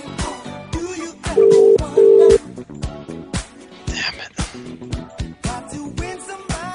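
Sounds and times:
telephone busy signal beeps on a call to a UK number: 1.4s - 2.4s.

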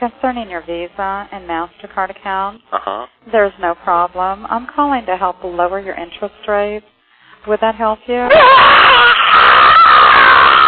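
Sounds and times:
speech: 0.0s - 9.2s
person screaming into a phone at a telemarketer: 8.3s - 10.6s.

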